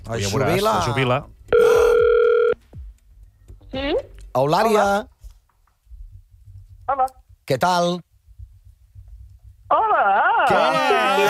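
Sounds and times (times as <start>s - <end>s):
speech: 0.1s - 1.4s, 3.7s - 5.1s, 6.9s - 8.1s, 9.7s - 11.2s
telephone line ringing after a call is dialed: 1.6s - 2.6s.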